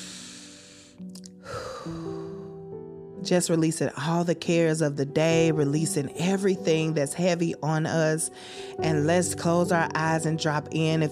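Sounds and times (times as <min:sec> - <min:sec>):
deep breath in and out during a calming close to a healing session: 0:00.0 - 0:02.6, 0:08.4 - 0:08.8
speech: 0:03.2 - 0:11.1.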